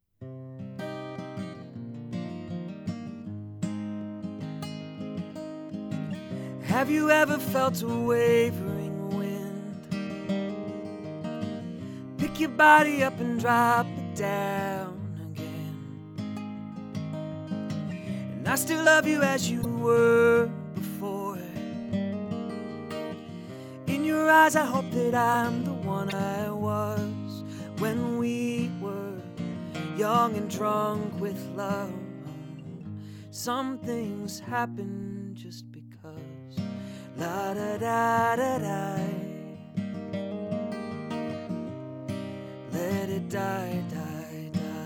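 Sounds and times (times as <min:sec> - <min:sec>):
music recorded on a Blue Yeti stereo USB microphone: 0:00.0 - 0:44.8.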